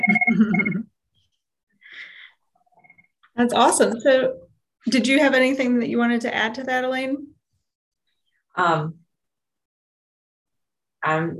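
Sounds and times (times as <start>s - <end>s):
electronic mobile phone ringtone: 0.0s - 0.8s
speech: 0.4s - 0.8s, 3.4s - 7.3s, 8.6s - 9.0s, 11.0s - 11.3s.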